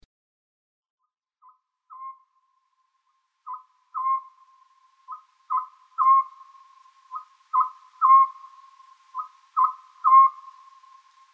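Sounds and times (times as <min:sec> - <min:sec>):
Oriental scops owl hooting: 0:01.9 - 0:02.2, 0:03.5 - 0:11.3.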